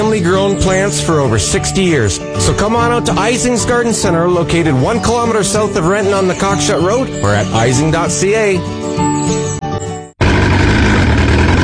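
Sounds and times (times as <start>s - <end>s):
speech: 0.0s - 9.5s
outboard boat motor idling and roaring: 10.2s - 11.6s.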